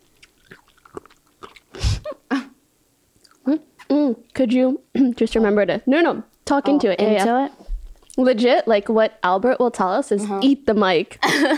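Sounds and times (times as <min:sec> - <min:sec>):
wet chewing crunches of pickled radish: 0:00.0 - 0:01.8
soft mouth sounds: 0:00.2 - 0:02.5, 0:03.2 - 0:04.3
speech: 0:04.4 - 0:07.6, 0:08.2 - 0:11.5.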